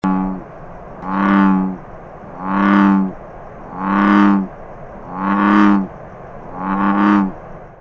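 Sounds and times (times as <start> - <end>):
bullfrog in summer: 0.0 - 7.4.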